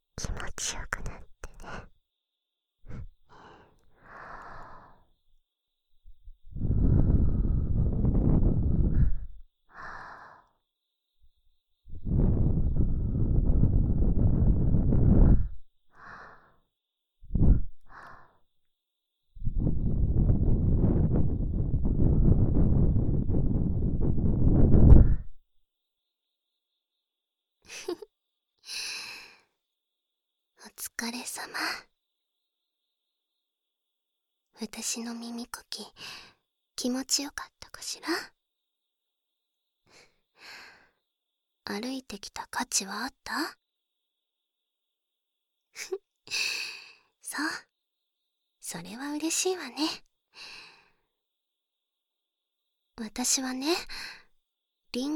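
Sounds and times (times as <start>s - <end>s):
soft breath blown into the ear close to the microphone: 6.5s - 10.2s, 11.9s - 16.4s, 17.3s - 18.4s, 19.4s - 25.4s
speech: 31.0s - 31.9s, 34.6s - 38.4s, 41.7s - 43.6s, 45.8s - 47.7s, 48.7s - 50.6s, 53.0s - 54.2s, 54.9s - 55.1s.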